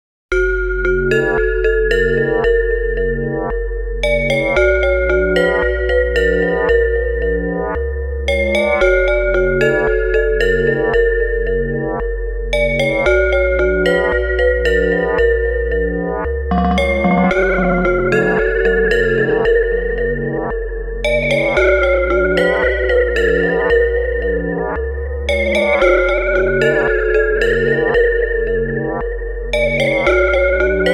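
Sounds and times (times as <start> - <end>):
synth bell: 0.4 - 30.9.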